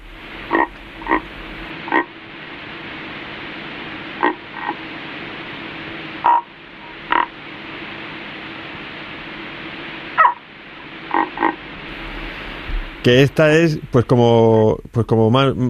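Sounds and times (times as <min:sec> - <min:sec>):
Iberian frogs calling: 0:00.0 - 0:02.3, 0:03.8 - 0:05.0, 0:06.1 - 0:08.0, 0:10.1 - 0:13.5
steady hiss: 0:00.0 - 0:15.6
speech: 0:13.0 - 0:15.6.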